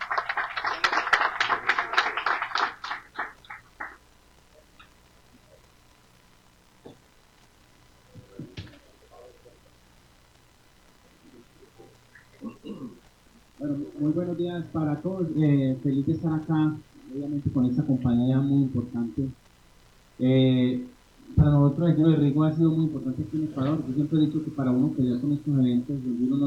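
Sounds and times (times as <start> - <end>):
crowd at an event in Manta Ecuador applauding: 0.0 - 4.0
speech: 14.4 - 19.4, 20.2 - 26.4.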